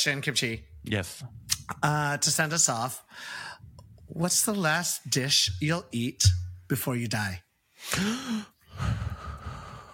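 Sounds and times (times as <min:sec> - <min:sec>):
speech: 0:00.0 - 0:09.0
person gasping in surprise: 0:03.1 - 0:03.7, 0:07.8 - 0:09.9.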